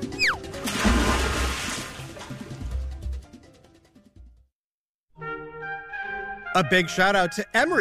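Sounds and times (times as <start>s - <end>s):
swooping whistle-like pitch glides of a cartoonish water slide: 0.2s - 0.4s
loud splash of water: 0.6s - 2.8s
speech: 6.6s - 7.8s.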